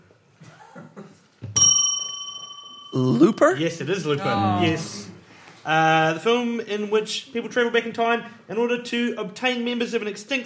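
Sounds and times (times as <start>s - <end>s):
quiz bell ding from a player belling in: 1.6s - 4.1s
speech: 3.0s - 10.4s.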